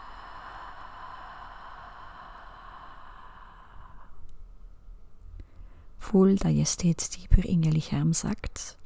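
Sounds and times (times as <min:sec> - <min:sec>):
slow soft breathing during a guided relaxation exercise: 0:00.0 - 0:06.0
speech: 0:06.0 - 0:08.8.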